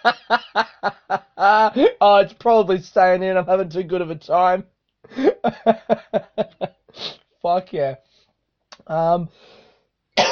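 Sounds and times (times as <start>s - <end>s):
laughter: 0.0s - 1.9s, 5.2s - 6.7s
speech: 1.5s - 6.6s, 7.5s - 8.1s, 8.9s - 9.6s
breathy exhale: 9.3s - 9.9s
throaty cough with a strained voiced rasp: 10.2s - 10.3s.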